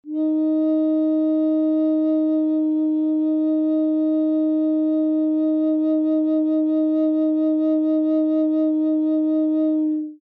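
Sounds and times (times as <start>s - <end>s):
bass flute single note in E flat: 0.0s - 10.2s.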